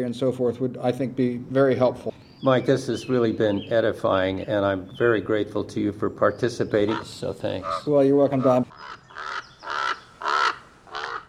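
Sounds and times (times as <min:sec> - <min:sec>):
speech: 0:00.0 - 0:09.0
crow cawing: 0:06.8 - 0:11.2.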